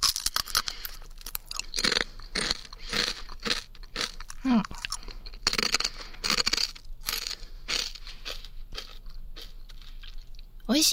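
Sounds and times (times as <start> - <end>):
crunchy food eaten close to the left ear: 0.0 - 10.5
speech: 4.4 - 4.8.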